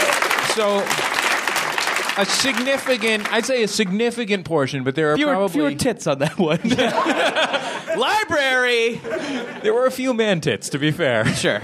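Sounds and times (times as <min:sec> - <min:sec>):
live audience applause: 0:00.0 - 0:04.0
speech: 0:00.6 - 0:01.0, 0:02.2 - 0:11.6
laughter: 0:05.2 - 0:10.2.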